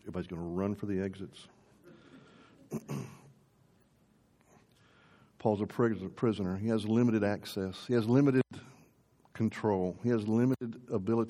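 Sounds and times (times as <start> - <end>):
speech: 0.1 - 1.6, 2.7 - 3.2, 5.4 - 8.5, 9.4 - 11.2
person coughing: 1.9 - 3.4.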